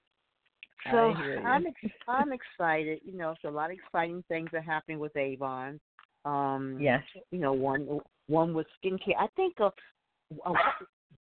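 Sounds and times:
speech: 0.8 - 11.0
dog barking: 10.5 - 10.9.

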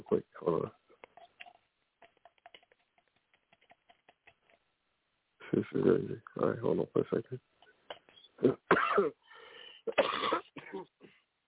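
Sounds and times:
speech: 5.6 - 7.6, 8.4 - 9.2
person coughing harshly: 8.4 - 9.2, 9.9 - 11.2
throat clearing: 8.4 - 9.2, 9.9 - 11.2
raspy breaths: 9.2 - 9.9.

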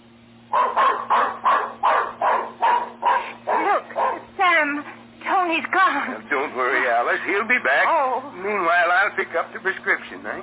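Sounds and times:
low steady hum: 0.0 - 10.4
dog barking as it runs off after a cat: 0.5 - 4.4
speech: 9.2 - 10.4.

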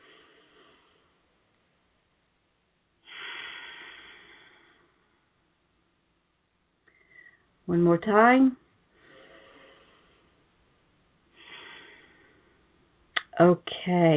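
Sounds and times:
deep belly breath: 0.0 - 1.3, 3.0 - 5.4, 6.8 - 7.6, 8.8 - 10.6, 11.2 - 13.0
soft breathy noise: 0.0 - 2.0, 2.9 - 6.0, 6.7 - 7.6, 8.6 - 13.1
speech: 7.7 - 8.6, 13.4 - 14.1.

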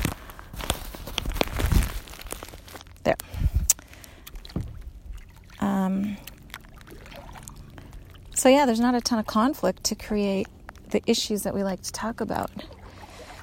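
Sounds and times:
scratchy fabric rustling against microphone while readjusting phone in life jacket: 0.0 - 3.7
low tonal hum: 0.0 - 13.4
speech: 8.4 - 12.8.

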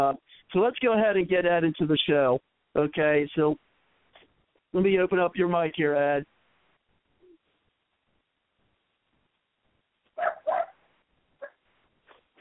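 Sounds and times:
speech: 0.0 - 3.7, 4.7 - 6.3
dog barking: 10.2 - 10.8
dog yipping: 10.2 - 10.8, 11.4 - 11.6.

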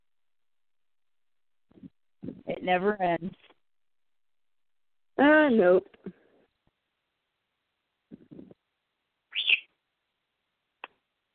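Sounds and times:
speech: 2.6 - 3.4, 5.2 - 6.2
pet bird screeching: 9.3 - 9.7
pet bird sharp chirp: 9.3 - 9.8.

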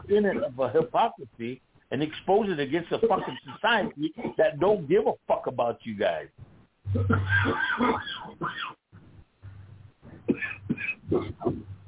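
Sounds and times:
low room noise: 0.0 - 11.8
speech: 0.1 - 8.8
harsh hacking coughs in the background: 3.1 - 4.5, 7.0 - 8.8, 10.2 - 11.7.

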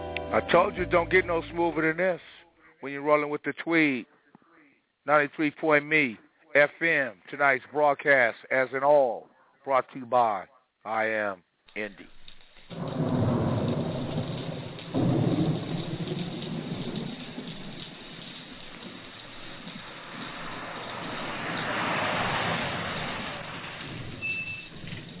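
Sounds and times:
speech: 0.3 - 4.1, 5.0 - 12.9
heavy rain in a thunderstorm: 12.1 - 25.1
thunder rumbling in a thunderstorm: 12.1 - 25.1.

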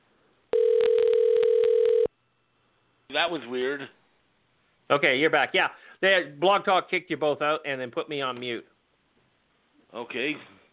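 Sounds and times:
steady telephone dialing tone: 0.5 - 2.1
speech: 3.2 - 4.0, 4.9 - 8.7, 9.9 - 10.6.

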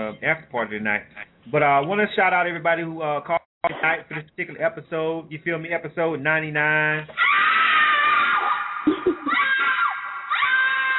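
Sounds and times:
speech: 0.1 - 7.4
woman screaming as a sound effect: 7.2 - 10.9.

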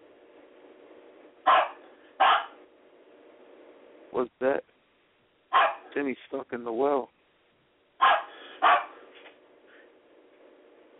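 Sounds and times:
low steady hum: 0.0 - 10.9
dog barking with loud sharp woofs: 1.4 - 2.6, 5.5 - 6.0, 8.0 - 9.0
speech: 4.1 - 4.7, 6.0 - 7.2.

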